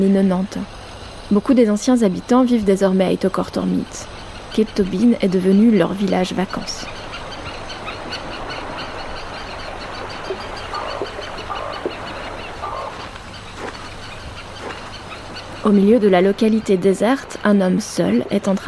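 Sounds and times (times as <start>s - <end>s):
speech: 0.0s - 7.0s, 15.6s - 18.6s
generator droning: 0.0s - 18.6s.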